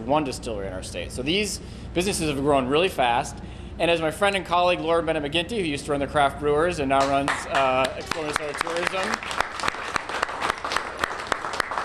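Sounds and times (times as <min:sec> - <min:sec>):
speech: 0:00.1 - 0:09.4
audience applause during a speech: 0:07.3 - 0:11.8.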